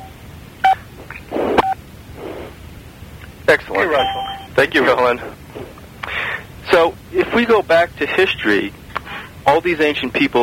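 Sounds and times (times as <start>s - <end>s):
noise: 0.0s - 10.4s
speech: 3.5s - 5.7s, 6.7s - 8.8s, 9.5s - 10.4s
telephone keypad tone from pressing key to mute on a conference call: 3.9s - 4.5s.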